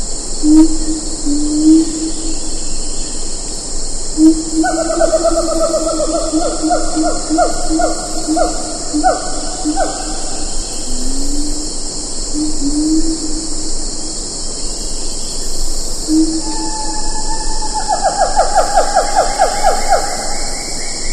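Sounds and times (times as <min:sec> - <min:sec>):
steady high insect chorus: 0:00.0 - 0:21.1
siamang calling: 0:04.2 - 0:10.5, 0:16.1 - 0:20.8.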